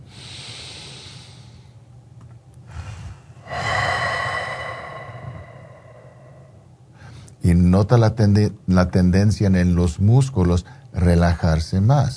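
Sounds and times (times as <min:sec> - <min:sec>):
slow deep relaxation breathing: 0:00.0 - 0:01.8, 0:02.6 - 0:07.3
speech: 0:07.4 - 0:12.1.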